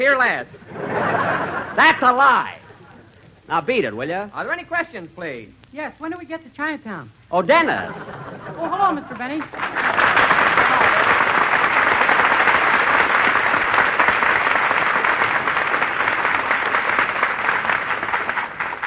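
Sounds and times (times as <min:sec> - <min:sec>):
speech: 0:00.0 - 0:02.6, 0:03.5 - 0:10.1
laughter: 0:00.5 - 0:03.4, 0:07.6 - 0:12.2
large studio audience applause: 0:08.6 - 0:18.8.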